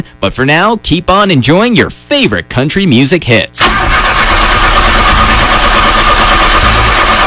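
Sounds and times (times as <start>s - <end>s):
speech: 0.0s - 4.1s
car engine running rough with a rattling grinding edge: 3.6s - 7.2s.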